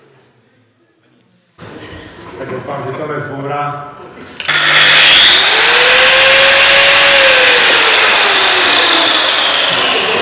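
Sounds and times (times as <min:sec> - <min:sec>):
speech: 0:02.4 - 0:04.8
blue 1500 W corded power tool with refurbished bearings running: 0:04.4 - 0:10.2.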